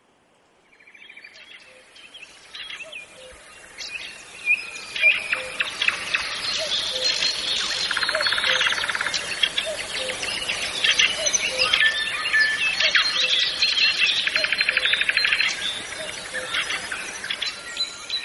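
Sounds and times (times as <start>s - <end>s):
dawn chorus of many birds chirping and trilling: 0.7s - 18.2s.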